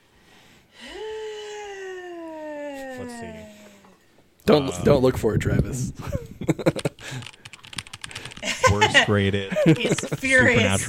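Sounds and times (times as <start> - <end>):
speech: 3.0 - 3.6, 4.5 - 7.3, 9.0 - 10.8
laughter: 6.0 - 10.8
rapid typing on a computer keyboard: 6.6 - 8.7.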